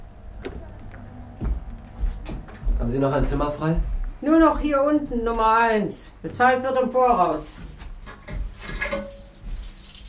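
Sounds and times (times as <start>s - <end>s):
speech: 2.8s - 7.6s
hotel room key jangling as it is handed over: 8.0s - 10.0s.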